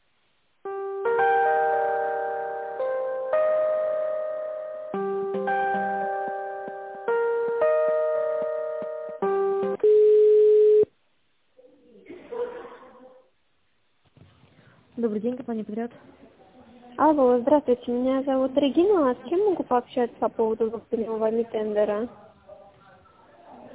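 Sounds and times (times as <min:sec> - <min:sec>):
electronic melodic tones on a phone line while a call is transferred: 0:00.7 - 0:10.9
speech: 0:15.1 - 0:16.2, 0:17.0 - 0:22.2.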